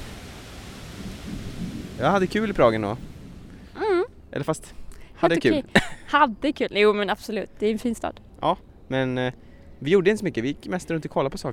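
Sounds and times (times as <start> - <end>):
deep rumbles of thunder in Prague: 0.0 - 3.8
dense heavy rain in Prague: 0.0 - 4.1
speech: 2.0 - 3.1, 4.3 - 11.5.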